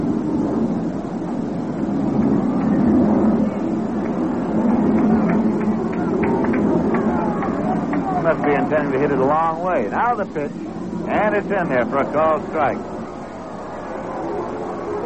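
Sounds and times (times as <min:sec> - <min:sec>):
airplane flying over a baseball game: 0:00.0 - 0:15.0
speech: 0:08.3 - 0:12.9.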